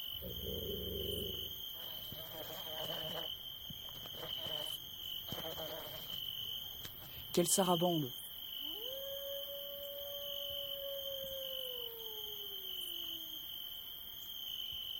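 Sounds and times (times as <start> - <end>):
wolves howling: 0.0 - 4.7, 8.6 - 13.8
crickets chirring at night: 0.0 - 14.9
speech: 7.4 - 8.2.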